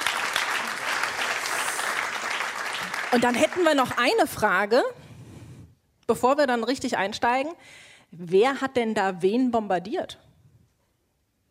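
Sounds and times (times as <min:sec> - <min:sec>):
audience applauding at a live stage event: 0:00.0 - 0:04.2
speech: 0:03.1 - 0:05.0, 0:06.1 - 0:10.2.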